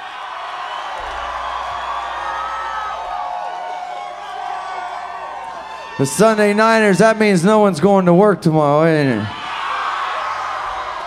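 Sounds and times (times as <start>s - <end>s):
live audience cheering and whooping: 0.0s - 6.5s, 9.3s - 11.0s
speech: 6.0s - 9.4s.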